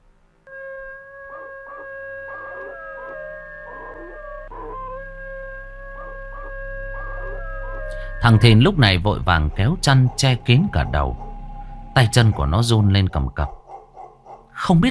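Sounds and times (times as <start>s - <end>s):
black dog howling in a yard: 0.5s - 12.8s, 13.4s - 14.6s
speech: 8.2s - 11.2s, 12.0s - 13.6s, 14.6s - 14.8s.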